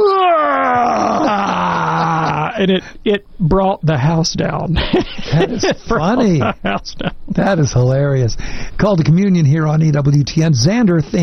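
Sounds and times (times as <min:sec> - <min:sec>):
voice imitating a young boy's loud yawn during a wedding ceremony: 0:00.0 - 0:02.6
laughter: 0:01.0 - 0:02.8, 0:04.8 - 0:07.6
speech: 0:02.6 - 0:11.2.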